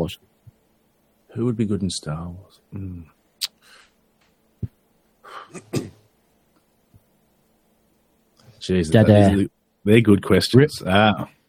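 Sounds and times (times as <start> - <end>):
speech: 0.0 - 0.3, 1.3 - 3.8, 5.3 - 5.9, 8.6 - 11.4
quiet breathing into a microphone: 3.6 - 4.0.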